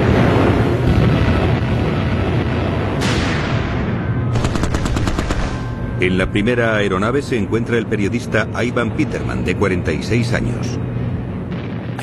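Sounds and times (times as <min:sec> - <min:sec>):
anti-aircraft gunfire from 88s aimed at low-flying aircraft: 0:00.0 - 0:05.8
small arms fire including .50-calibre and 37 mm guns: 0:04.3 - 0:05.6
speech: 0:06.0 - 0:10.9.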